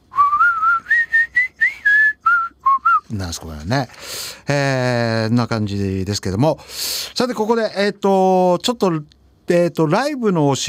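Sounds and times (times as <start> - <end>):
whistled melody: 0.1 - 3.0
speech: 3.1 - 10.6.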